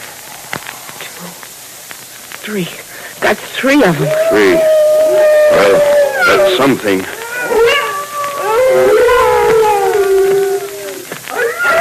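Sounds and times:
speech: 2.4 - 7.7
timber wolves howling together: 3.7 - 11.8.

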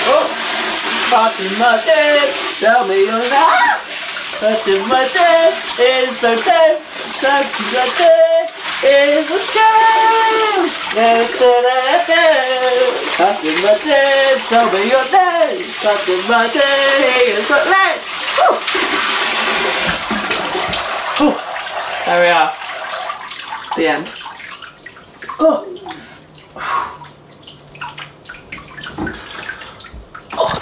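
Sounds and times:
powerful shower spraying water: 0.0 - 24.4
person singing with wavering drawn-out notes: 1.1 - 3.8, 4.4 - 17.7
speech: 1.1 - 3.8, 4.4 - 19.1, 21.2 - 21.4, 22.0 - 22.6, 23.8 - 24.2, 25.4 - 25.7.

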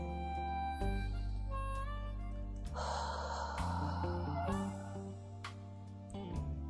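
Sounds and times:
sustained droning music: 0.0 - 6.6
deep breathy inhalation as a breathing exercise: 2.7 - 5.4
soft exhalation through the mouth as a breathing exercise: 2.8 - 5.3.

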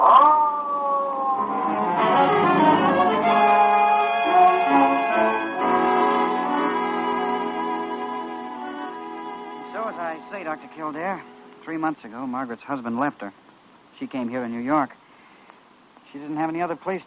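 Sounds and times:
siren wailing: 0.0 - 9.0
speech: 10.8 - 13.4, 14.0 - 15.0, 16.1 - 17.0.

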